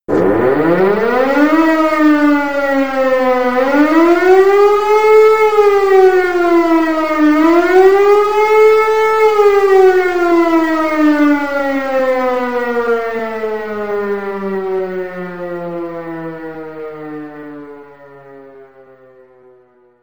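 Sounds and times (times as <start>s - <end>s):
short alarm: 0.1s - 19.2s.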